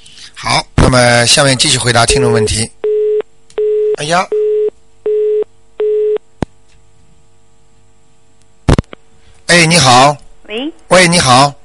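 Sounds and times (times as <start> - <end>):
speech: 0.5 - 2.8, 4.0 - 4.4, 9.6 - 11.6
telephone busy signal after a dropped call: 2.8 - 6.2.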